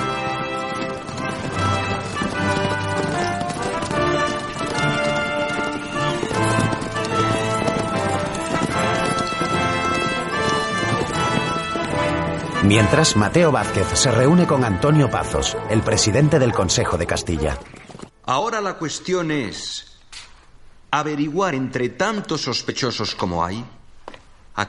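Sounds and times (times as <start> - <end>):
horses' hooves clip-clopping as a retinue rides away on horseback: 0.0 - 18.2
dense musical backdrop: 0.0 - 18.8
speech: 12.6 - 19.9, 20.9 - 23.8.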